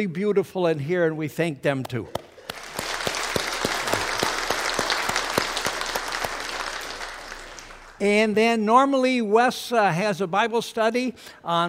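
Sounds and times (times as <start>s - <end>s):
speech: 0.0s - 2.2s, 8.0s - 11.6s
audience applauding in a church sanctuary: 2.2s - 8.0s.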